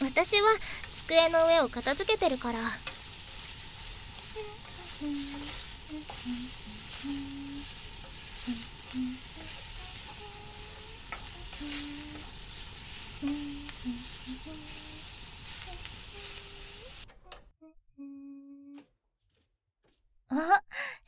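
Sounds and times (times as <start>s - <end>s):
wieners sizzling in a frying pan: 0.0s - 17.1s
speech: 0.2s - 2.9s, 4.4s - 7.3s, 8.5s - 9.2s, 20.4s - 21.0s
faint tonal sounds: 4.1s - 18.8s.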